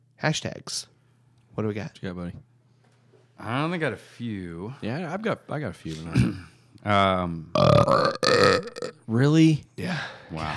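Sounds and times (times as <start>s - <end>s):
speech: 0.2s - 1.0s, 1.6s - 2.5s, 3.4s - 10.5s
loud drawn-out belch: 7.6s - 9.0s.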